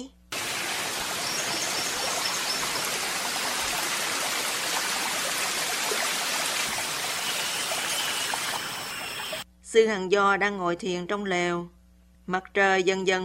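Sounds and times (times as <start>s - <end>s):
babbling stream: 0.4s - 9.4s
speech: 9.7s - 13.2s.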